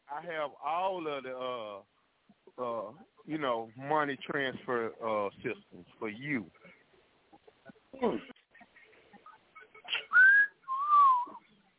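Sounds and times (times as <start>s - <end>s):
speech: 0.2s - 6.8s, 8.0s - 8.3s
person whistling: 9.9s - 11.4s.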